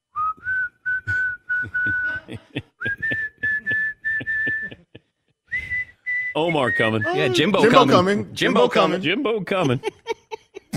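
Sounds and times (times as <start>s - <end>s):
person whistling a clear tune: 0.1s - 4.9s, 5.5s - 7.6s
laughter: 1.6s - 5.0s, 6.9s - 10.7s
speech: 6.4s - 10.0s.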